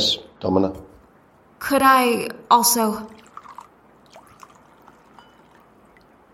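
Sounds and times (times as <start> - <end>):
speech: 0.0 - 0.9, 1.6 - 3.2
drink being poured into a glass: 3.1 - 6.2.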